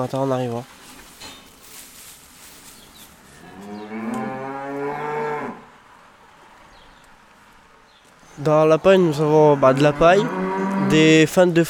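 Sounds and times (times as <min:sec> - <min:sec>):
speech: 0:00.0 - 0:00.8, 0:08.4 - 0:11.6
cow mooing in a barn: 0:03.4 - 0:05.7, 0:09.4 - 0:11.2.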